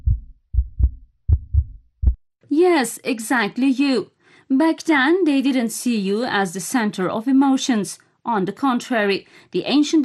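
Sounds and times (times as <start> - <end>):
human heart beating in the chest: 0.0 - 2.3
speech: 2.5 - 10.0.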